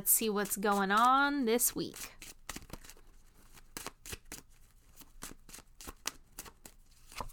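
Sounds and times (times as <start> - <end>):
speech: 0.0 - 2.4
tarot cards being shuffled: 1.9 - 7.3.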